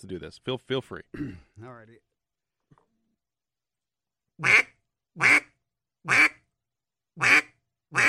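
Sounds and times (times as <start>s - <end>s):
speech: 0.0s - 2.1s, 4.4s - 5.4s, 6.0s - 6.3s
raspy basic quacks blown on a duck call: 4.4s - 5.5s, 6.1s - 6.4s, 7.2s - 8.0s.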